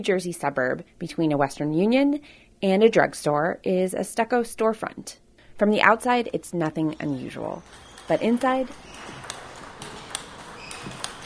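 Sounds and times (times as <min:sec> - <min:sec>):
speech: 0:00.0 - 0:09.2
low hum: 0:00.0 - 0:11.2
ping pong balls struck at a table tennis center: 0:06.8 - 0:11.2.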